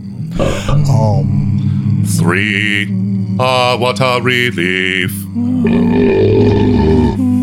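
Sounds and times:
loud deep belch: 0.4s - 1.0s, 5.6s - 7.2s
speech: 2.1s - 6.8s.

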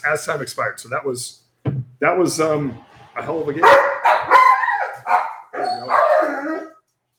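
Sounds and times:
speech: 0.0s - 1.4s, 2.0s - 4.0s
dogs barking and yelping: 3.6s - 6.9s.

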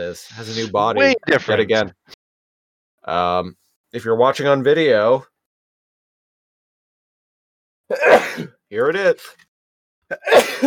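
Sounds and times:
speech: 0.0s - 2.1s, 3.0s - 5.3s, 7.9s - 9.4s, 10.1s - 10.6s
person sneezing: 7.9s - 8.5s, 10.1s - 10.6s.

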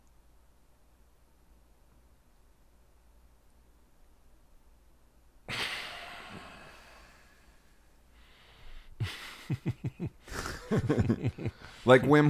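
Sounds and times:
loud rushing exhale: 5.5s - 7.6s
sharp breath drawn in: 5.5s - 9.0s
laughter: 9.0s - 12.1s
speech: 9.5s - 12.2s.

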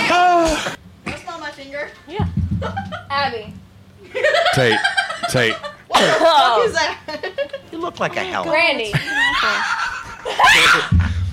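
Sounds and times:
speech: 1.6s - 11.1s
laughter: 4.0s - 7.8s, 8.8s - 11.2s
person screeching with shrill high-pitched squeals: 10.4s - 11.0s.

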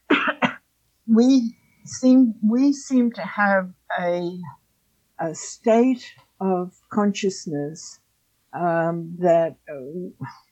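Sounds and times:
person coughing: 0.1s - 0.6s
voiced throat clearing: 0.1s - 0.6s
speech: 1.1s - 4.6s, 5.2s - 10.4s.

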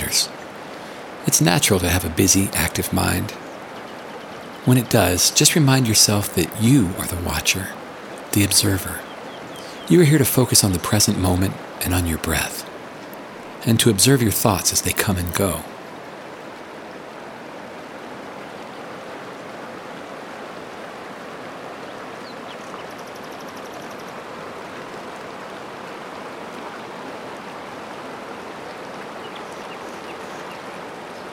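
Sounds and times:
flowing river water: 0.0s - 31.3s
speech: 0.1s - 0.4s, 1.2s - 3.5s, 4.6s - 7.8s, 8.4s - 9.1s, 9.9s - 12.6s, 13.6s - 15.8s
faint high chirps: 8.8s - 10.0s.

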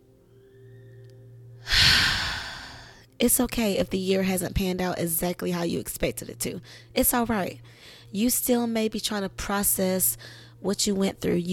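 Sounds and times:
deep breath in during guided relaxation: 1.6s - 3.0s
speech: 3.2s - 11.5s.

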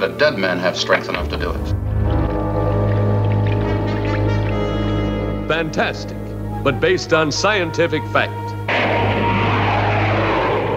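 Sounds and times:
speech: 0.0s - 1.8s, 5.5s - 8.5s
propeller airplanes droning as they fly low overhead: 0.0s - 10.7s.

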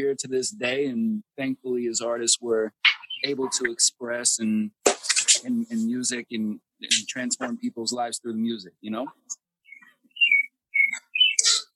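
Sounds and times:
speech: 0.0s - 9.4s
bird chirps and tweets: 2.8s - 3.7s, 9.6s - 11.7s.

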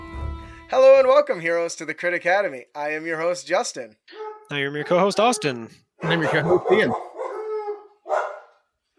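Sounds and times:
speech: 0.7s - 7.1s
dog howling: 4.1s - 8.9s.

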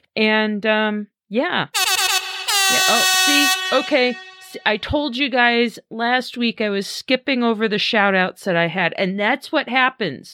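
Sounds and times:
speech: 0.2s - 1.8s, 2.7s - 10.3s
air horn sound effect blasts: 1.8s - 4.9s.

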